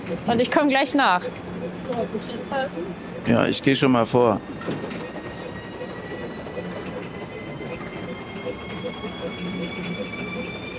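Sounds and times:
busy train-station ambience: 0.0 - 10.7
speech: 0.1 - 5.1
wheelchair lift being cranked up by hand: 4.5 - 10.7.

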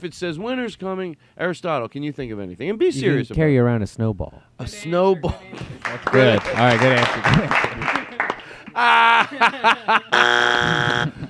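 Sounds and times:
speech: 0.0 - 8.0, 8.8 - 11.2
laughter: 5.2 - 11.2
loud harsh game-show buzzer blaring: 10.1 - 11.2.

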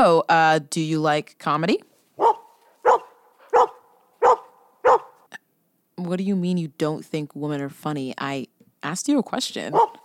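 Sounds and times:
speech: 0.0 - 2.3, 6.0 - 10.0
dog barking: 2.2 - 5.3, 9.7 - 10.0.

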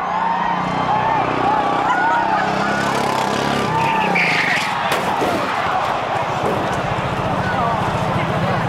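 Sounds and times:
go-kart skidding around a cone: 0.0 - 8.6
small go-kart engine whining: 0.0 - 8.6
spectators shouting and clamoring: 0.0 - 8.6
go-kart crashing into a crowd: 1.3 - 8.2.

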